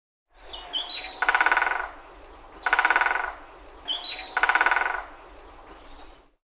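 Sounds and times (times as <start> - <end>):
woodpecker drumming on tree bark: 0.7 - 5.4.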